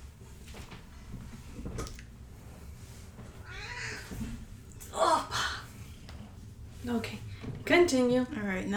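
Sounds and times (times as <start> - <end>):
cat meowing: 3.4 - 4.2
speech: 6.9 - 8.7.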